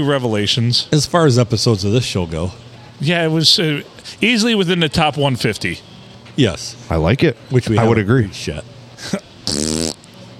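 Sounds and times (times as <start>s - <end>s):
speech: 0.0s - 9.3s
loud buzzy fart noise: 9.4s - 10.1s.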